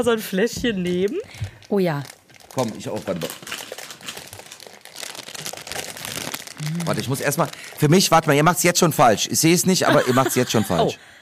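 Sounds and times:
speech: 0.0s - 3.6s, 6.6s - 11.2s
plastic snack bag crinkling as a hand rummages inside: 1.0s - 9.6s
laughter: 9.8s - 11.0s.

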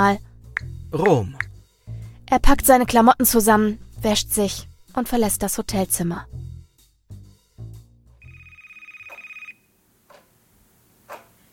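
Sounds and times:
speech: 0.0s - 0.3s, 0.9s - 1.5s, 2.3s - 6.4s
telephone bell ringing: 8.3s - 9.7s.

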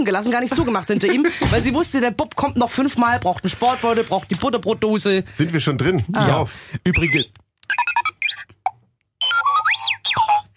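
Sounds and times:
speech: 0.0s - 7.4s
laughter: 0.2s - 1.4s
electronic children's toy bleeps and boings: 6.9s - 10.5s.

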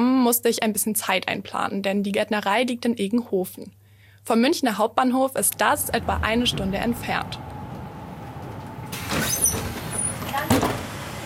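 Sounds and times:
speech: 0.3s - 7.5s
bus engine idling in Egenhofen near Munich Germany: 5.4s - 11.2s
bus brake squeal: 5.6s - 11.2s
bus air brakes hissing: 7.2s - 11.2s.

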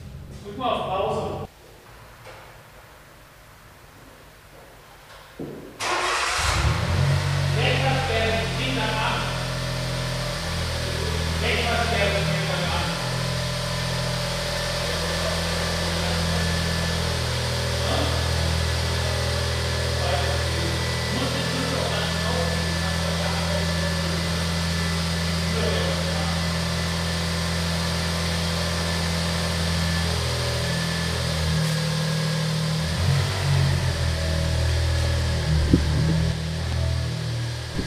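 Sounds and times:
speech: 0.4s - 1.4s
small Smart Roadster sports car engine humming at idle: 5.8s - 37.8s.

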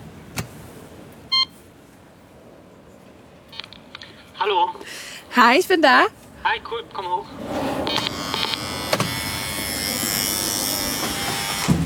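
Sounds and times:
quiet outdoor noise: 0.0s - 11.8s
electronic intercom doorbell beep at a back-courtyard entrance: 1.3s - 1.5s, 7.9s - 11.7s
speech: 4.4s - 8.0s.

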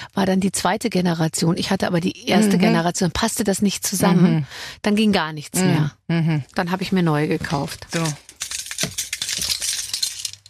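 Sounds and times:
speech: 0.1s - 8.3s
keys on a keyring with a heavy brass pendant jingling: 8.0s - 10.4s.

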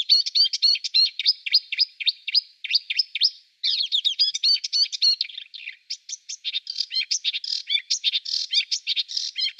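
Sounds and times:
songbird singing, mimicking other bird species: 0.0s - 9.5s.

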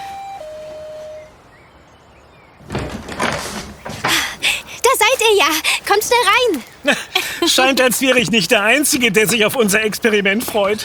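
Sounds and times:
two-note ding-dong doorbell chime: 0.0s - 1.4s
door opening with a broad rustling scrape and clatter: 2.6s - 4.3s
speech: 5.3s - 10.8s.

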